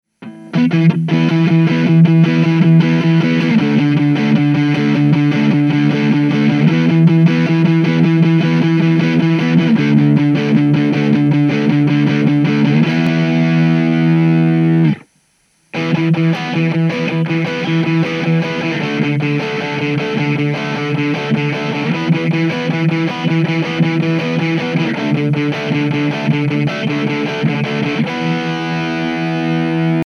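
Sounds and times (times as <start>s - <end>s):
buffer drive: 0.2s - 30.0s.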